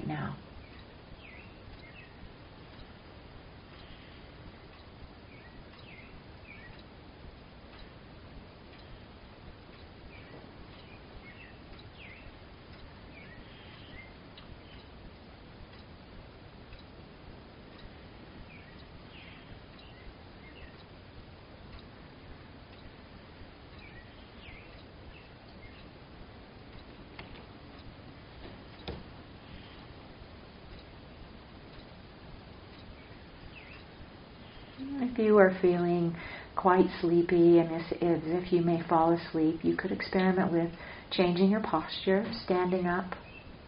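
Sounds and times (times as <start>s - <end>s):
steady ambient noise: 0.0s - 43.6s
birds chirping and calling outdoors: 0.1s - 2.2s, 3.8s - 6.9s, 10.0s - 15.0s, 17.8s - 20.9s, 22.7s - 30.1s, 32.7s - 37.0s, 42.3s - 43.6s
speech: 34.9s - 43.2s.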